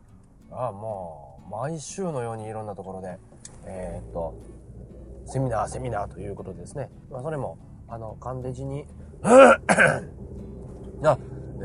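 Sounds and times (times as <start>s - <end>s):
speech: 0.5s - 10.2s, 11.0s - 11.6s
man clearing his throat: 9.2s - 10.1s.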